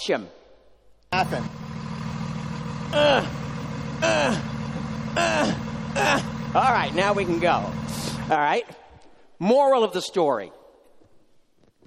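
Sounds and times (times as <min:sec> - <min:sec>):
speech: 0:00.0 - 0:00.4, 0:01.1 - 0:01.6, 0:02.9 - 0:03.4, 0:04.0 - 0:04.6, 0:05.2 - 0:08.8, 0:09.4 - 0:10.6
bus engine idling at a stop: 0:01.1 - 0:08.4.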